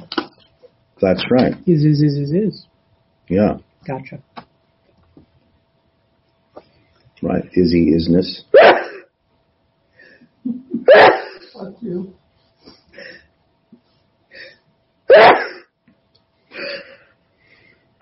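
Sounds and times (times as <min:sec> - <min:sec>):
speech: 0:01.0 - 0:02.7, 0:03.3 - 0:04.3, 0:07.2 - 0:08.8, 0:11.7 - 0:12.2
person sneezing: 0:08.6 - 0:09.1, 0:10.9 - 0:11.6, 0:15.1 - 0:15.7.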